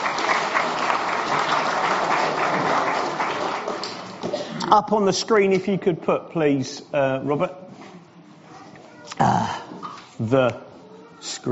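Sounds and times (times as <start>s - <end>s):
audience applause: 0.0s - 4.4s
speech: 4.7s - 7.6s, 10.2s - 10.7s.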